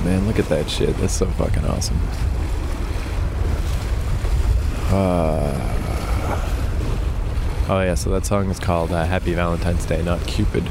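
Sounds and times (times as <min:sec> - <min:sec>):
surf washing against shoreline rocks on a windy cold day: 0:00.0 - 0:10.7
wind buffeting the microphone: 0:00.0 - 0:10.7
speech: 0:00.1 - 0:02.5, 0:04.9 - 0:06.5, 0:07.7 - 0:10.7
tonal voice-like sound: 0:04.9 - 0:06.6.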